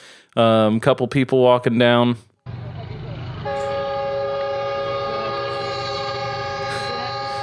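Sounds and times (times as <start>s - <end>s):
speech: 0.4s - 2.3s
train rumbling along tracks crossing a street in Pakistan: 2.5s - 7.4s.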